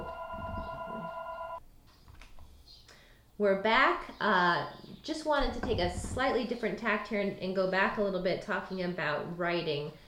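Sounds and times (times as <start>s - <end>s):
telephone ringing with an electronic tone: 0.0s - 1.6s
speech: 3.4s - 10.0s.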